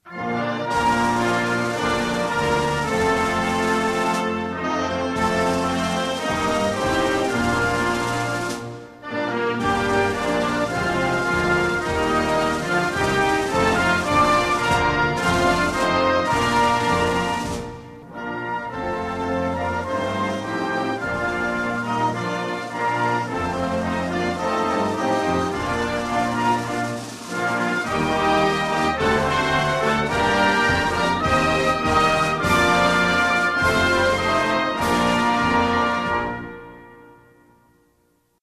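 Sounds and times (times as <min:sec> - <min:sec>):
national anthem: 0:00.0 - 0:38.2.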